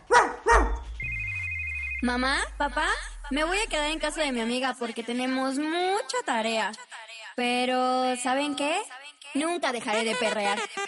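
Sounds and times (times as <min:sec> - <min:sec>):
dog barking: 0:00.0 - 0:00.9
low hum: 0:00.5 - 0:04.6
steady high electronic tone: 0:00.8 - 0:04.4
speech: 0:02.0 - 0:10.8.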